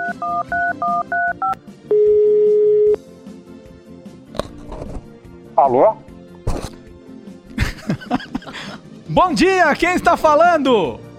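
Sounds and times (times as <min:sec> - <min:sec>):
low phone line noise: 0:00.0 - 0:03.0
telephone keypad dual-tone beeps opening a phone line: 0:00.0 - 0:03.0
speech: 0:05.6 - 0:06.1, 0:09.2 - 0:11.0
laughter: 0:07.5 - 0:08.8.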